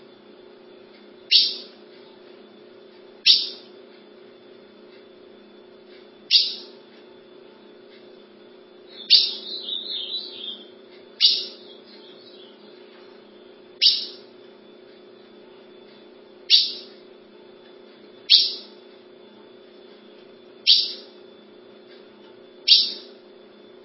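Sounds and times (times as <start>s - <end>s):
low hum: 0.0s - 21.8s
ultramarine grosbeak warbling and giving chip notes: 1.3s - 1.7s, 3.2s - 3.6s, 6.3s - 6.7s, 8.9s - 12.7s, 13.8s - 14.2s, 16.5s - 16.9s, 18.3s - 18.7s, 20.6s - 21.1s, 22.7s - 23.1s.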